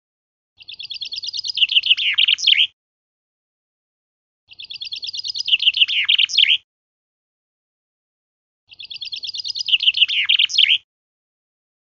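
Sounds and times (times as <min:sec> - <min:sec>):
Common chaffinch Fringilla coelebs song: 0:00.6 - 0:02.8, 0:04.5 - 0:06.6, 0:08.7 - 0:10.9.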